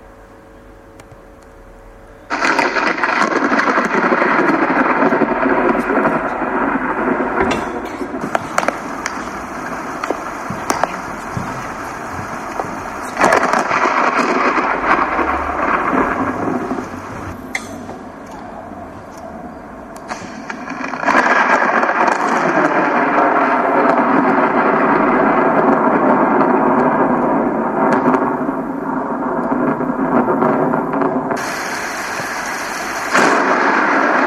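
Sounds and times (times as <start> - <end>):
dense hissing rain in a thunderstorm: 2.3 - 19.0, 20.0 - 34.2
rumbling thunder: 2.3 - 34.2
sharp crackles of thunder: 2.3 - 34.2.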